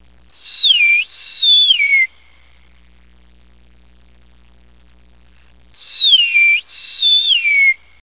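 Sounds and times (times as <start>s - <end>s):
meadowlark singing: 0.4s - 2.2s, 5.8s - 8.0s.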